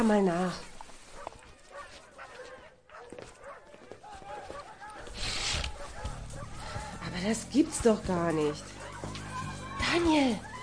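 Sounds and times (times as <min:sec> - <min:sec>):
speech: 0:00.0 - 0:00.7, 0:07.2 - 0:08.7, 0:09.9 - 0:10.5
pack of dogs barking: 0:01.1 - 0:07.4, 0:08.5 - 0:09.5.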